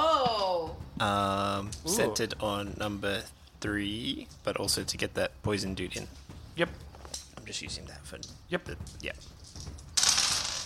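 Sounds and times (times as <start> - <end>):
speech: 1.0 - 6.9, 7.5 - 9.7
handful of eight-sided dice tumbling across a table in a tabletop game: 9.4 - 10.6.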